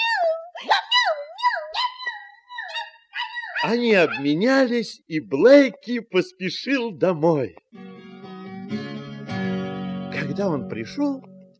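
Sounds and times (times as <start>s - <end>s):
dog giving high yelping barks: 0.0s - 4.4s
speech: 3.6s - 8.0s, 10.4s - 11.3s.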